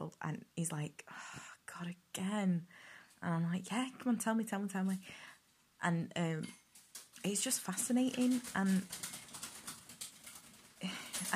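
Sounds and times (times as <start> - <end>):
speech: 0.0 - 6.6, 7.2 - 9.2
pet bird flapping its wings in its cage: 6.8 - 11.3.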